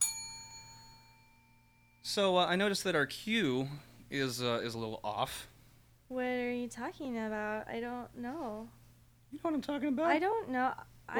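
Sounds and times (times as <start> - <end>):
bell struck once on a countdown to start a scene: 0.0 - 2.0
speech: 2.1 - 5.5, 6.1 - 11.1.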